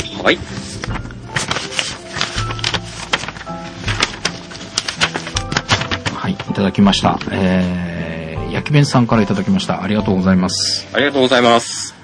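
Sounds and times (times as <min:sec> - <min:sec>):
paper letter being opened with crinkles and rips: 0:00.0 - 0:07.5
faint low hum of music: 0:00.0 - 0:12.0
speech: 0:00.2 - 0:00.6, 0:06.6 - 0:12.0.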